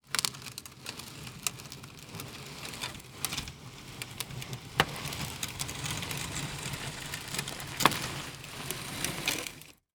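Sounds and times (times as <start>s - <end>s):
industrial crate being pulled slowly: 0.0s - 9.8s.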